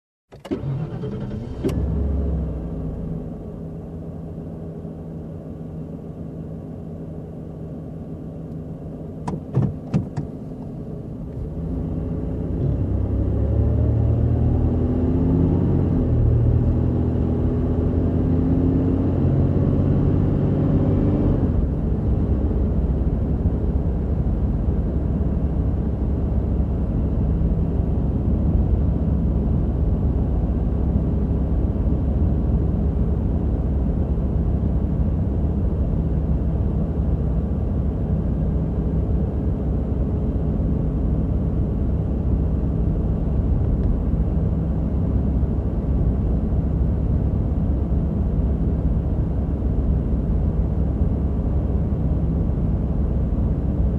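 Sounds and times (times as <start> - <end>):
car engine ignition: 0.3 - 53.9.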